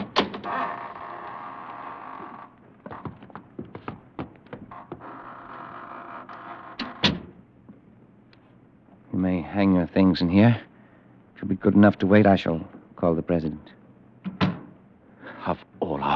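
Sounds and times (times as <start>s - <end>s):
wooden door creaking open: 0.0s - 7.4s
speech: 9.2s - 10.7s, 11.4s - 13.8s, 15.4s - 16.1s
door shutting with a thud: 14.3s - 14.7s.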